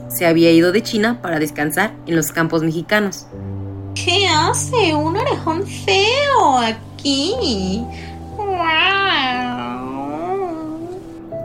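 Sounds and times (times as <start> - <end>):
speech: 0.1 - 8.9
cat meowing with a long wavering whiny tone: 8.4 - 11.2.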